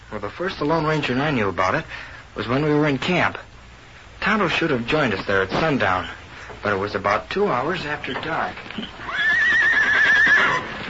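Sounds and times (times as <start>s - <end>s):
faint noise: 0.0s - 10.8s
speech: 0.1s - 3.5s, 4.2s - 9.2s
frightened horse whinnying shrilly: 8.9s - 10.8s.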